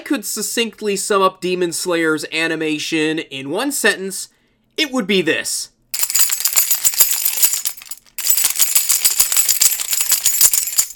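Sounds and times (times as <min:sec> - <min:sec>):
speech: 0:00.1 - 0:05.7
keys jangling in front of a microphone: 0:06.0 - 0:10.9.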